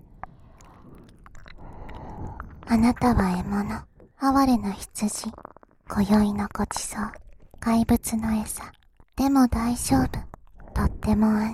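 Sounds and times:
wet ear-licking mouth sounds: 0.0s - 4.1s, 5.0s - 9.2s, 10.1s - 10.8s
speech: 2.7s - 11.5s.

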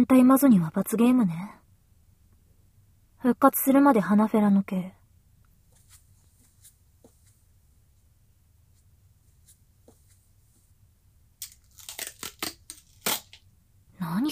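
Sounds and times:
speech: 0.0s - 1.6s, 3.2s - 5.0s
duct tape tearing off roll: 11.4s - 13.4s.

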